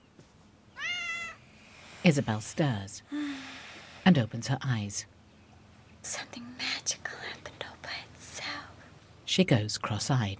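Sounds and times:
cat meowing as it hops onto a bed: 0:00.8 - 0:01.4
speech: 0:02.0 - 0:03.2, 0:04.1 - 0:05.1, 0:06.0 - 0:07.4, 0:09.3 - 0:10.3.

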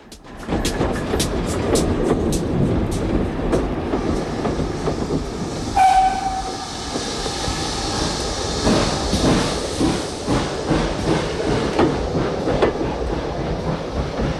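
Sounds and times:
steam train chuffing and rumbling: 0:00.0 - 0:14.3
steam train high squeal: 0:05.8 - 0:07.0.

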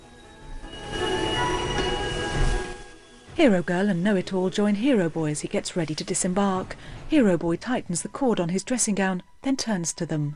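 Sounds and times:
steam train rumbling as it slows to a halt: 0:00.0 - 0:06.9
faint metallic brake squeals: 0:00.6 - 0:03.2
steady hiss of a steam train: 0:00.6 - 0:03.4
speech: 0:03.4 - 0:10.3.

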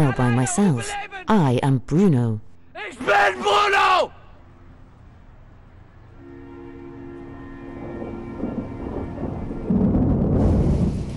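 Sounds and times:
speech: 0:00.0 - 0:04.2
steady rain: 0:07.3 - 0:11.1
low rumbling thunder: 0:07.6 - 0:11.1.

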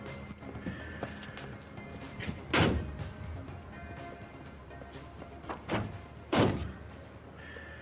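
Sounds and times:
car door slamming shut: 0:02.2 - 0:03.0, 0:05.5 - 0:06.8.

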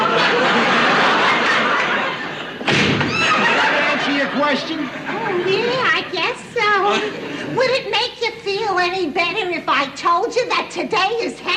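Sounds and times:
crowd laughing: 0:00.0 - 0:07.8
door slamming shut: 0:02.6 - 0:03.4
speech: 0:08.8 - 0:11.5.

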